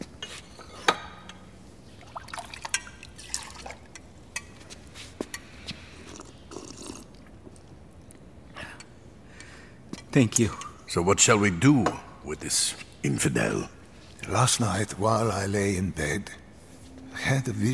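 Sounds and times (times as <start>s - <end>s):
water poured into a cup or glass: 2.0s - 3.9s
speech: 10.2s - 16.4s, 17.2s - 17.7s.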